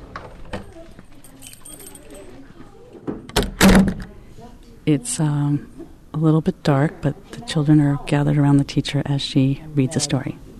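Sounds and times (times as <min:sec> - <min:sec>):
faint murmur: 0:00.0 - 0:10.5
rattle and click of keys turning in the lock: 0:00.5 - 0:02.4
classroom door closing with a solid thunk: 0:03.1 - 0:04.1
speech: 0:04.8 - 0:10.4.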